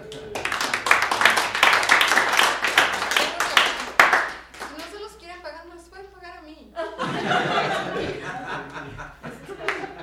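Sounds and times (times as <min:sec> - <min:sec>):
applause from a small group: 0:00.0 - 0:05.0, 0:09.6 - 0:09.9
laughter: 0:06.8 - 0:10.0.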